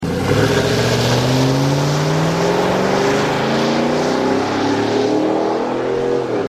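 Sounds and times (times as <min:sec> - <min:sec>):
Avalanche exhaust system during exterior launch: 0:00.0 - 0:05.7.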